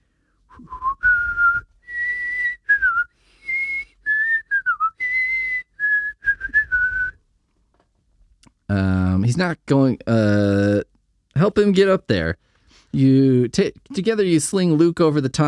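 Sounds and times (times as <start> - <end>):
person whistling a tune: 0.5 - 7.2
speech: 0.6 - 0.8, 8.7 - 10.6, 11.6 - 15.4.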